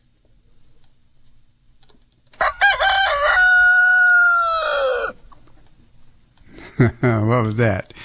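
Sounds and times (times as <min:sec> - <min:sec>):
rooster crowing: 0:02.4 - 0:05.2
speech: 0:06.8 - 0:08.0.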